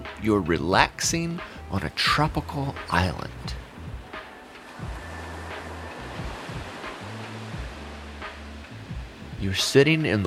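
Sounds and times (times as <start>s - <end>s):
speech: 0.2s - 3.6s, 9.4s - 10.2s
ocean waves crashing on a beach: 2.5s - 10.1s.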